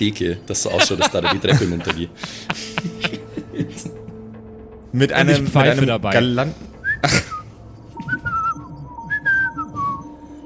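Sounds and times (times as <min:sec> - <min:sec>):
speech: 0:00.0 - 0:04.0, 0:04.9 - 0:07.2
laughter: 0:00.6 - 0:04.3
person whistling a casual wandering tune: 0:06.8 - 0:10.4.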